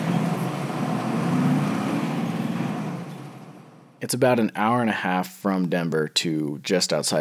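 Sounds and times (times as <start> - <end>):
truck driving along the road with engine drone and tire noise: 0.0 - 4.0
speech: 4.0 - 7.1.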